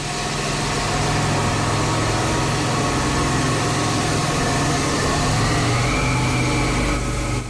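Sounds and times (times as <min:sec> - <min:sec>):
aircraft engine roar: 0:00.0 - 0:07.4.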